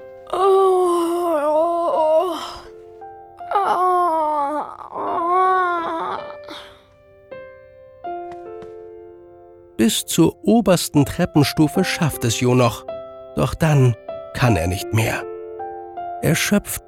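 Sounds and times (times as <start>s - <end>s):
person yawning loudly: 0.2s - 2.7s, 3.5s - 6.9s
speech: 9.9s - 15.3s, 16.2s - 16.8s.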